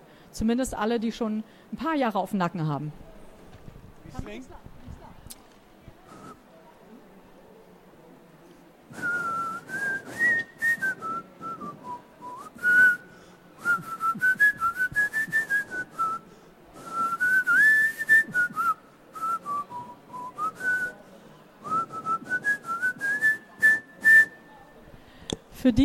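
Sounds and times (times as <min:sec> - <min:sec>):
speech: 0:00.4 - 0:03.1, 0:04.1 - 0:04.7
person whistling a tuneful melody: 0:08.9 - 0:13.0, 0:13.6 - 0:16.2, 0:16.8 - 0:21.0, 0:21.6 - 0:24.4.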